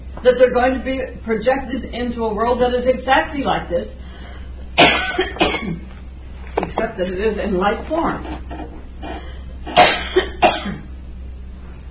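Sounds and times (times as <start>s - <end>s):
faint low hum: 0.0s - 11.8s
speech: 0.2s - 4.2s, 6.8s - 8.5s
person with throat trouble coughing: 4.8s - 5.8s, 9.0s - 10.9s.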